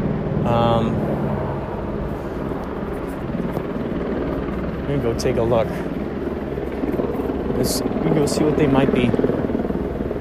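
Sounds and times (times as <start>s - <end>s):
helicopters hovering overhead: 0.0s - 10.1s
speech: 0.4s - 1.3s, 4.9s - 6.0s, 7.6s - 9.3s.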